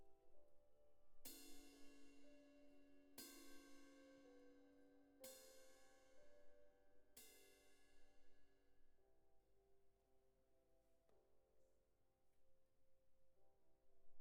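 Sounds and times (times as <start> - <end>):
cymbal: 1.2 - 6.4, 7.0 - 8.4.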